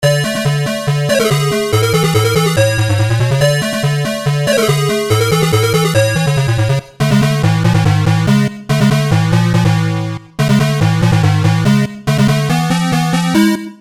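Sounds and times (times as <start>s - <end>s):
8-bit synth: 0.0s - 13.7s.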